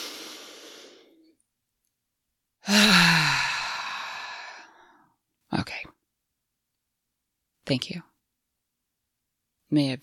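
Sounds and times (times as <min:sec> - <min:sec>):
person drawing a big deep breath: 0:00.0 - 0:01.3, 0:02.6 - 0:05.1
speech: 0:07.7 - 0:08.1, 0:09.7 - 0:10.0.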